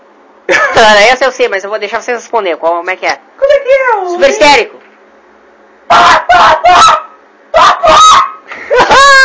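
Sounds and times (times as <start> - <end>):
speech: 0.8 - 4.8, 5.9 - 7.0
voices imitating chickens clucking: 5.9 - 9.2.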